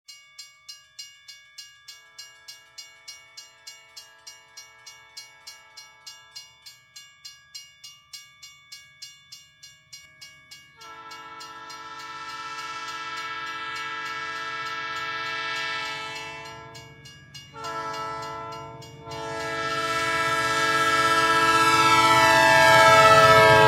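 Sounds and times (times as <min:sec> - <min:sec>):
probably Southern Pacific locomotive approaching a level crossing: 0:01.9 - 0:23.6.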